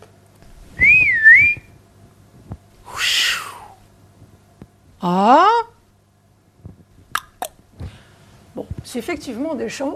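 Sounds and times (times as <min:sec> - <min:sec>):
person whistling a short wavering two-part tune with the mouth: 0:00.8 - 0:01.7
speech: 0:05.0 - 0:05.5, 0:08.9 - 0:09.9.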